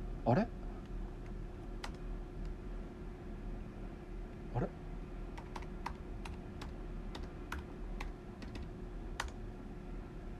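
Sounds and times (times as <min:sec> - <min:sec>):
low steady hum: 0:00.0 - 0:10.3
speech: 0:00.2 - 0:00.6
typing on a computer keyboard: 0:01.2 - 0:02.6, 0:05.3 - 0:09.4.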